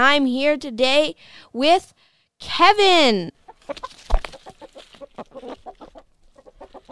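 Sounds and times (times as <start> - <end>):
speech: 0.0 - 4.3
chicken clucking: 3.4 - 6.9.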